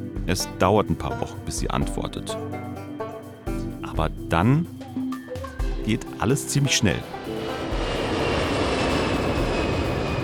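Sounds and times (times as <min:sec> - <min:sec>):
speech: 0:00.3 - 0:02.9, 0:04.0 - 0:04.7, 0:05.9 - 0:07.2
airplane cabin engine drone during landing approach: 0:06.9 - 0:10.2.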